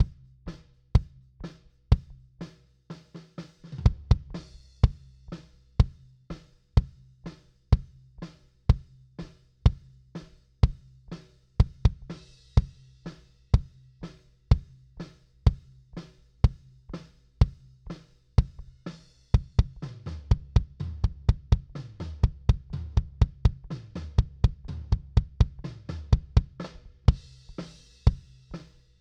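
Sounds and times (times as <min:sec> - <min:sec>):
kick drum: 0:00.0 - 0:00.2, 0:01.0 - 0:01.2, 0:01.9 - 0:02.2, 0:03.8 - 0:05.0, 0:05.8 - 0:06.0, 0:06.8 - 0:07.1, 0:07.7 - 0:08.0, 0:08.7 - 0:09.0, 0:09.7 - 0:09.9, 0:10.6 - 0:10.9, 0:11.6 - 0:12.8, 0:13.6 - 0:13.8, 0:14.5 - 0:14.8, 0:15.5 - 0:15.7, 0:16.4 - 0:16.7, 0:17.4 - 0:17.8, 0:18.4 - 0:27.3.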